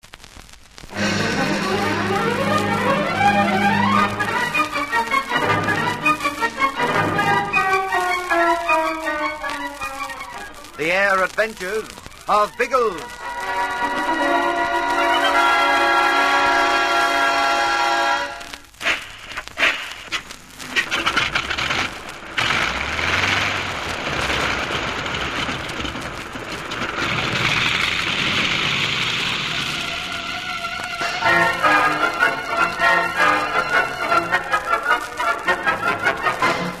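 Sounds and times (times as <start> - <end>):
heavy downpour from a storm over Inagua in the West Indies: 0.0 - 36.7
music: 0.9 - 10.9, 12.2 - 18.6, 29.6 - 36.7
speech: 10.8 - 13.2.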